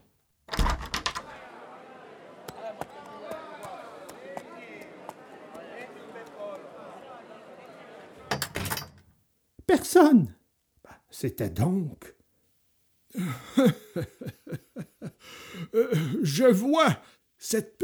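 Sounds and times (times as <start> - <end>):
shop door rattling open: 0.5 - 1.2
laughter: 1.3 - 8.3, 13.2 - 16.9
speech: 9.9 - 10.4, 11.2 - 12.2, 13.6 - 14.4, 15.8 - 17.8.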